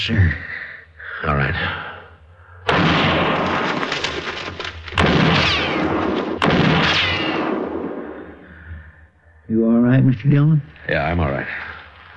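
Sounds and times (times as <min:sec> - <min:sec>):
speech: 0:00.0 - 0:00.5, 0:01.2 - 0:01.9, 0:09.5 - 0:11.6
gunshots with long rumbling echo fired into brush: 0:02.6 - 0:08.6.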